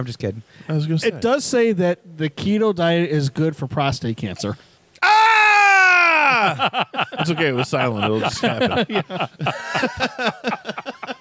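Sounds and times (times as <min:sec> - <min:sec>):
speech: 0:00.0 - 0:05.1, 0:06.4 - 0:10.8
person letting out a loud drawn-out high-pitched yell: 0:05.0 - 0:06.6
laughter: 0:06.0 - 0:11.2.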